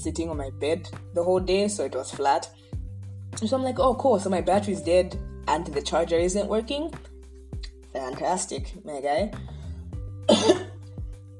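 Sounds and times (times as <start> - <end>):
speech: 0.0 - 2.6, 3.4 - 7.1, 7.9 - 9.6, 10.3 - 10.6
person coughing harshly: 10.3 - 10.8.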